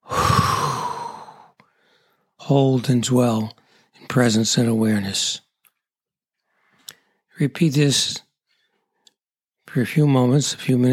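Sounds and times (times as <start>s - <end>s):
person blowing out a deep breath during guided breathing meditation: 0.0s - 2.2s
speech: 2.5s - 5.4s, 7.4s - 8.2s, 9.7s - 10.9s.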